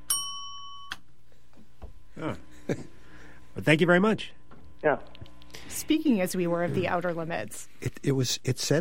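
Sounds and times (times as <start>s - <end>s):
quiz bell ding: 0.0s - 1.0s
speech: 2.2s - 2.9s, 3.6s - 5.2s, 5.8s - 8.8s.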